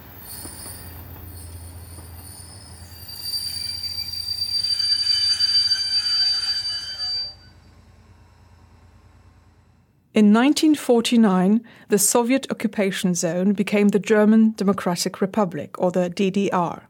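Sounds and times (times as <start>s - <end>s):
train wheels squealing as it brakes: 0.0s - 8.9s
train rumbling: 0.0s - 10.1s
speech: 10.2s - 16.8s.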